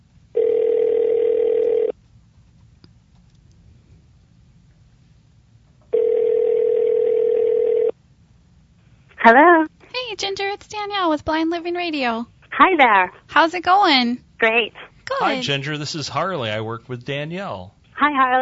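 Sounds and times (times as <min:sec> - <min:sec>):
telephone ringback tone as a phone call is placed: 0:00.4 - 0:01.9, 0:05.9 - 0:07.9
speech: 0:09.3 - 0:18.3.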